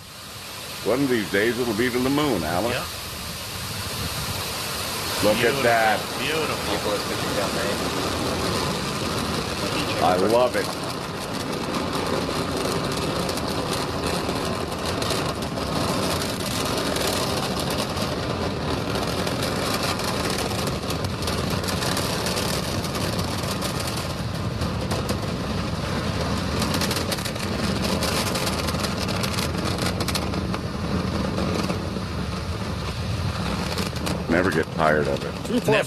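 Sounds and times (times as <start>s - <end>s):
Merlin rocket engines roaring at launch: 0.0s - 35.8s
speech: 0.8s - 3.0s, 5.2s - 8.2s, 10.0s - 10.9s, 34.8s - 35.8s.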